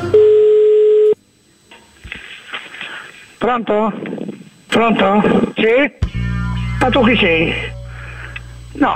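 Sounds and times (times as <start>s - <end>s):
telephone call tone while a call is placed: 0.1s - 1.2s
speech: 3.5s - 4.1s, 4.8s - 6.1s, 6.8s - 7.7s, 8.8s - 8.9s.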